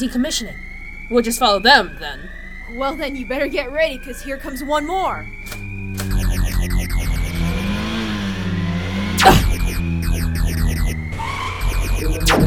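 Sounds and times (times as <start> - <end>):
speech: 0.0 - 5.6
car engine revving at speed: 5.2 - 12.4
car whooshing past: 7.5 - 9.2.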